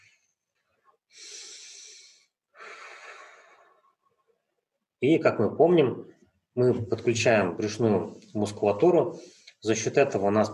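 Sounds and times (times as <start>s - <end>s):
slow deep breath drawn in through the nose: 1.1s - 3.8s, 9.2s - 9.6s
speech: 5.0s - 10.5s.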